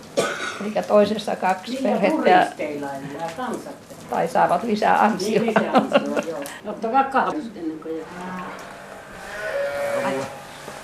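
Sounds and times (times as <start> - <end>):
speech: 0.6 - 8.7
laughter: 5.2 - 6.6
cows mooing inside an echoing barn: 7.8 - 10.8.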